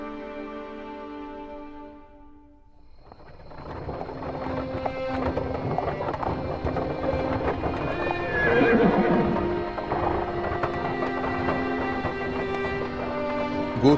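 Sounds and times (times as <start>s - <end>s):
horse hooves clopping: 2.8s - 13.9s
horse-drawn carriage wheels rattling: 2.9s - 13.9s.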